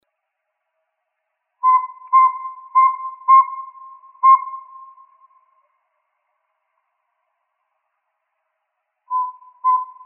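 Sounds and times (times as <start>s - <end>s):
Northern saw-whet owl whistled toots in Arizona: 1.6s - 5.3s, 9.1s - 10.0s.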